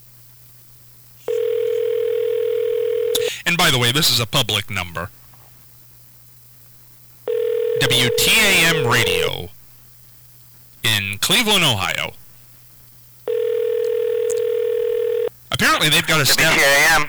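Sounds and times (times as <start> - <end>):
telephone ringing tone on an outgoing call: 1.3 - 3.3, 7.3 - 9.5, 13.3 - 15.4
speech: 3.5 - 5.2, 7.8 - 9.6, 11.2 - 12.2, 15.8 - 17.0.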